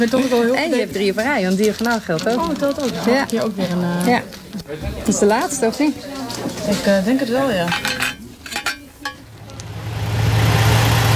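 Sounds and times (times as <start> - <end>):
speech: 0.0 - 8.0
bus engine droning inside a moving bus during a long bus trip: 4.2 - 11.1.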